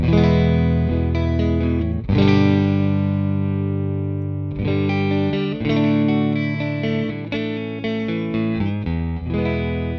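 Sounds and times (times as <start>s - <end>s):
clean electric guitar on a single-coil neck pickup through an amp, strummed chords: 0.0s - 9.9s.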